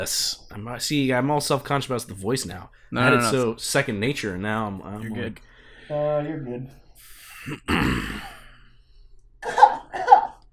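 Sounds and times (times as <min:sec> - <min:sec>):
speech: 0:00.0 - 0:08.3
person coughing close to the mic: 0:07.3 - 0:08.6.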